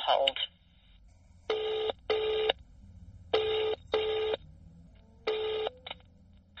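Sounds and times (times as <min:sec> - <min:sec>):
speech: 0:00.1 - 0:00.5
telephone ringback tone on a call to an office: 0:01.5 - 0:02.6, 0:03.3 - 0:04.5, 0:05.3 - 0:06.0.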